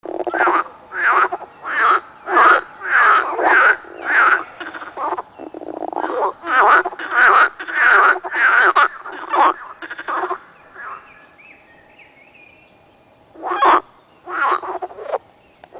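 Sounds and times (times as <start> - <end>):
frog calling: 0.0 - 11.2, 13.3 - 15.2.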